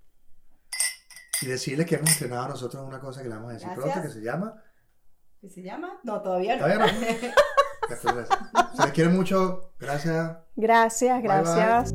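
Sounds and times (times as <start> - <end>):
glasses clinking in a toast: 0.7 - 2.4
speech: 1.4 - 4.7, 5.4 - 11.9
laughter: 6.6 - 9.3.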